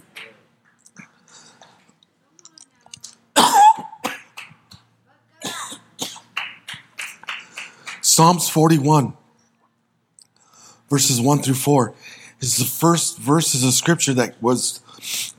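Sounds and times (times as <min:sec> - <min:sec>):
person with an irritated throat coughing: 0:03.4 - 0:04.4, 0:05.4 - 0:06.3
speech: 0:08.2 - 0:09.2, 0:10.9 - 0:15.3.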